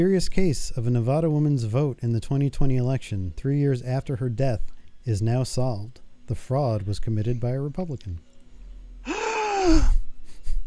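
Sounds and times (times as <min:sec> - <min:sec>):
speech: 0:00.0 - 0:08.3, 0:09.6 - 0:10.0
soft breathy exhales: 0:09.0 - 0:09.9
loud drawn-out theatrical gasp: 0:09.1 - 0:09.9.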